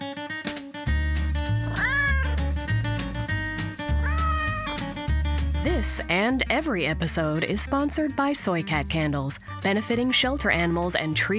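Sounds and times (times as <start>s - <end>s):
upbeat music with thumping low bassline: 1.0s - 11.3s
cat meowing: 1.6s - 2.5s, 4.0s - 4.9s
speech: 5.6s - 11.3s.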